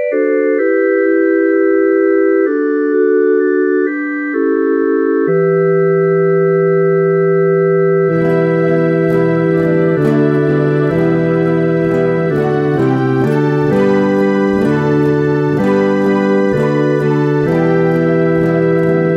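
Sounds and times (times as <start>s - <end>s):
guitar: 0.1s - 19.1s.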